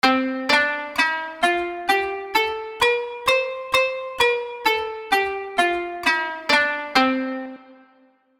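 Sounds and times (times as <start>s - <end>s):
kanun playing: 0.0s - 8.0s.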